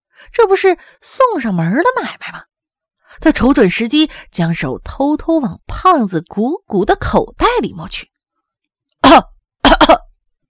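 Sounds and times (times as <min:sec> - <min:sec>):
speech: 0:00.3 - 0:02.5, 0:03.2 - 0:08.1, 0:09.1 - 0:09.3
person coughing on a bus: 0:09.1 - 0:10.1.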